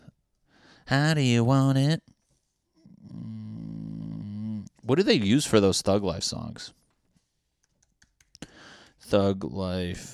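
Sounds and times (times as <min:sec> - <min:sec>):
speech: 0:00.9 - 0:02.1, 0:04.9 - 0:06.8, 0:09.1 - 0:10.1
slow typing on a computer keyboard: 0:07.6 - 0:08.4.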